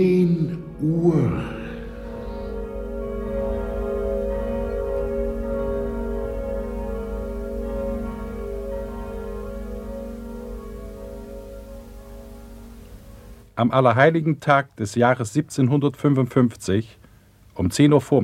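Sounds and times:
church bells ringing in Lisbon: 0.0 - 13.5
speech: 13.6 - 17.0, 17.6 - 18.2.

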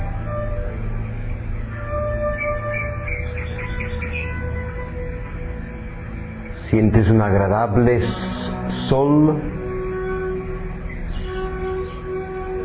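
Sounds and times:
birds singing in trees amid thick vegetation on a sunny day: 0.0 - 12.6
steady unbroken tonal hum: 0.0 - 12.6
speech: 6.7 - 9.5.

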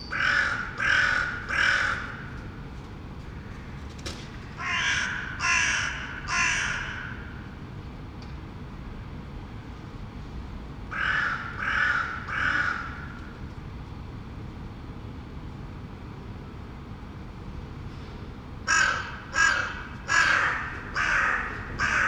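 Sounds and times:
crow cawing in Saint-Gilles, Belgium: 0.1 - 2.4, 4.6 - 7.5, 10.9 - 13.3, 18.7 - 22.0.

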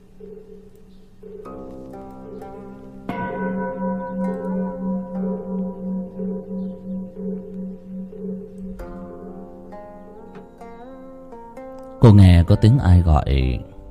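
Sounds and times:
temple bell ringing: 2.4 - 10.9
speech: 12.1 - 13.7.

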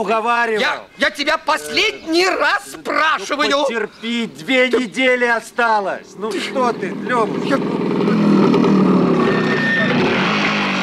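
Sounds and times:
speech: 0.0 - 8.5
motorcycle engine running: 6.2 - 10.8.

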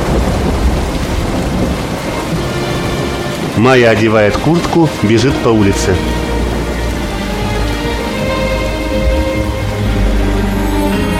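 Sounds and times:
thunder rumbling: 0.0 - 10.4
heavy rain outside: 0.0 - 11.1
speech: 3.6 - 6.2.

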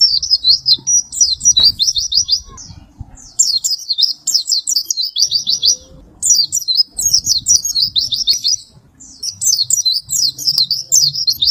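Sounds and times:
white-eye singing quick runs of high sweet zigzag notes: 0.0 - 11.4.

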